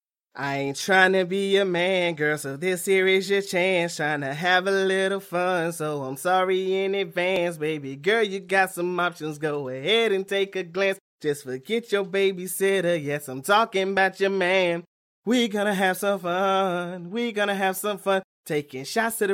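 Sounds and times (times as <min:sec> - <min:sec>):
rnb a cappella vocals: 0:00.3 - 0:19.3.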